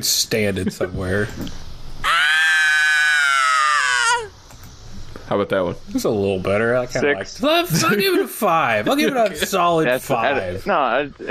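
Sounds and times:
speech: 0.0s - 1.7s, 5.3s - 11.2s
man screaming: 2.0s - 4.4s.

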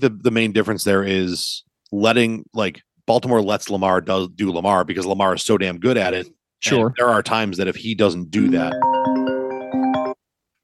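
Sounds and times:
speech: 0.0s - 8.9s
mobile phone ringtone melody: 8.5s - 10.2s.

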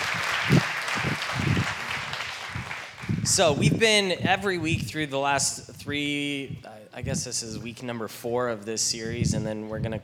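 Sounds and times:
audience applauding a guest speaker: 0.0s - 3.5s
speech: 3.4s - 10.0s.

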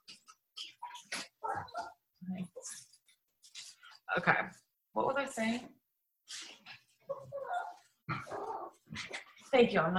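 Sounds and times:
dog barking and yipping excitedly: 0.8s - 2.0s, 7.0s - 8.9s
speech: 4.2s - 4.6s, 5.3s - 5.8s, 9.5s - 9.9s.

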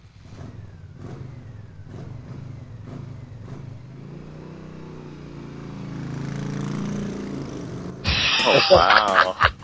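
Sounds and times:
motorcycle engine revving: 0.0s - 8.9s
laughter: 8.1s - 9.6s
speech: 8.5s - 9.6s.

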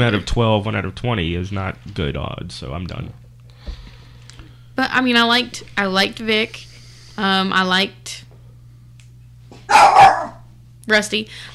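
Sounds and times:
speech: 0.0s - 3.2s, 4.8s - 8.3s, 10.9s - 11.5s
dog barking: 9.6s - 10.5s.

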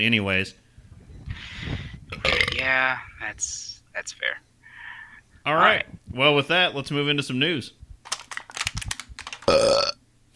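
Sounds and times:
speech: 0.0s - 0.6s, 2.6s - 4.5s, 5.4s - 7.8s
loud drawn-out burp: 2.1s - 2.6s, 9.5s - 10.0s.

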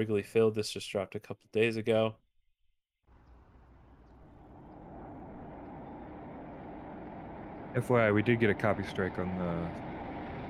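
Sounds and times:
speech: 0.0s - 2.2s, 7.8s - 9.9s
loud whirring FPV drone buzz flying through stadium: 3.2s - 10.4s.

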